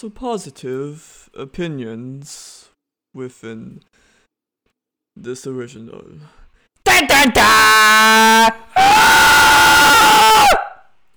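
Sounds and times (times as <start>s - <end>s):
speech: 0.0s - 4.1s, 5.2s - 6.4s, 7.0s - 8.9s
goat screaming: 6.9s - 10.8s.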